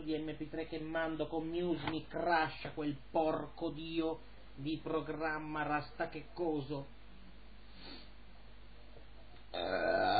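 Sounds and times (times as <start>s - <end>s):
speech: 0.0s - 7.0s, 9.5s - 10.1s
man burping after a big pasta meal: 9.5s - 10.1s.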